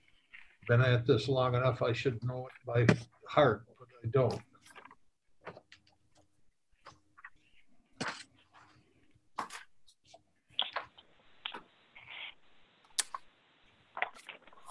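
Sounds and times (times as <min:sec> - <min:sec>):
speech: 0:00.7 - 0:04.5
crisp paper pages turning during a meeting: 0:04.5 - 0:12.4, 0:13.9 - 0:14.6.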